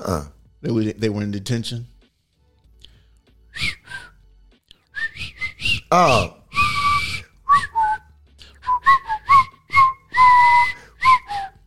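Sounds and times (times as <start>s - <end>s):
speech: 0.1s - 1.9s, 5.9s - 6.4s
person whistling a movie tune: 3.5s - 4.2s, 4.8s - 11.6s.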